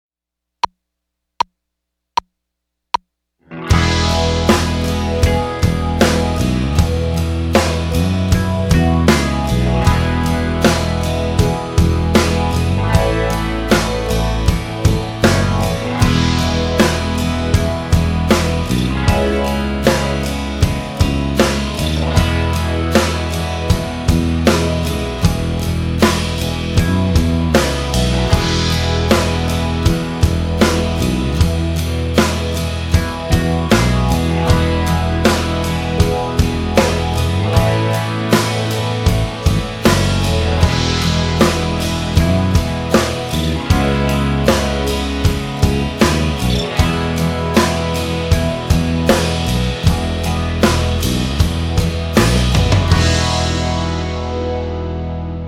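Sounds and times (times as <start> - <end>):
instrumental music in E without guitar: 3.0 - 55.4.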